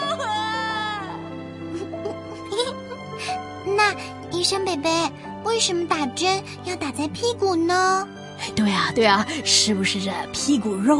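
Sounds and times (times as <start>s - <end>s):
young boy wailing and sobbing in the next room: 0.0s - 4.0s
speech: 3.9s - 10.9s.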